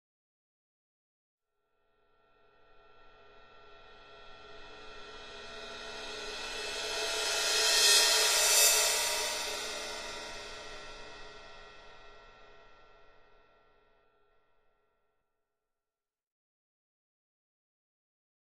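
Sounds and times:
thin cymbal: 2.2s - 13.4s.

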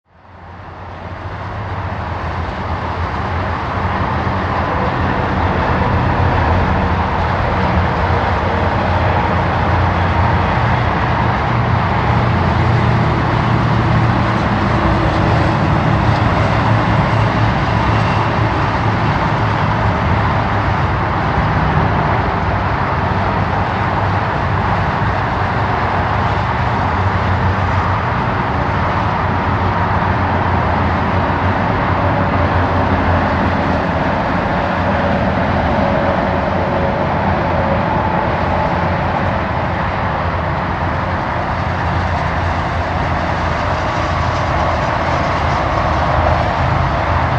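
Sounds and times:
busy highway traffic rumble: 0.1s - 47.3s.

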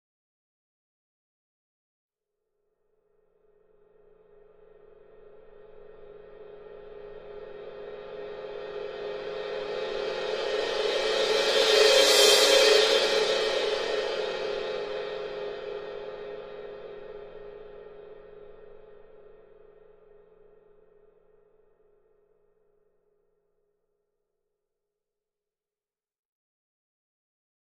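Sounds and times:
large cymbal crescendo: 3.7s - 20.9s.

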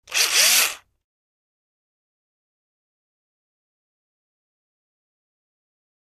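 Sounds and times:
small electric drill: 0.0s - 0.9s.

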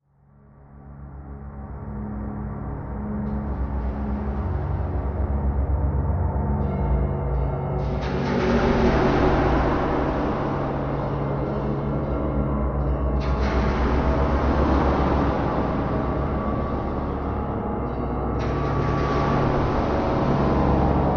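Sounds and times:
eerie low ghostly music pads: 0.1s - 21.1s.

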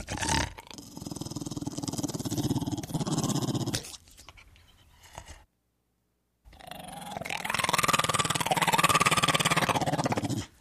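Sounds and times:
pit bull terrier growling: 0.0s - 3.9s, 6.5s - 10.6s.

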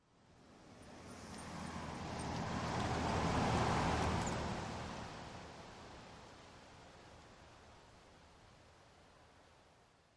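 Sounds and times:
car passing by at medium speed: 0.5s - 6.0s.

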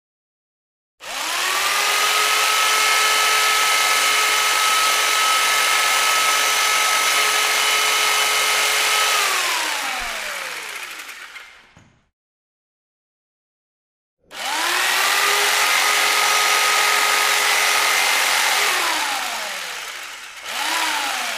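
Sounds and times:
jigsaw idling and running: 1.0s - 11.8s, 14.3s - 21.3s.

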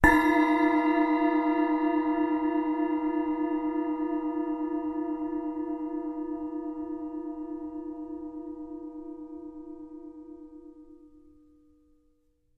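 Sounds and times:
8 inch splash cymbal strike: 0.0s - 6.2s.

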